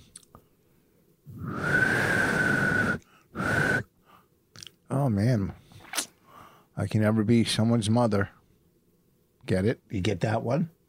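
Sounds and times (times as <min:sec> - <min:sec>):
breathy airy blow of a failed whistling attempt: 0:01.5 - 0:03.9
speech: 0:05.0 - 0:05.6, 0:06.8 - 0:08.4, 0:09.5 - 0:10.8.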